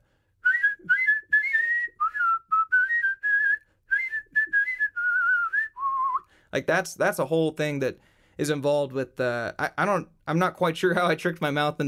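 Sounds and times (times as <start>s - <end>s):
yodel-style whistling: 0.4s - 6.3s
speech: 6.5s - 11.8s.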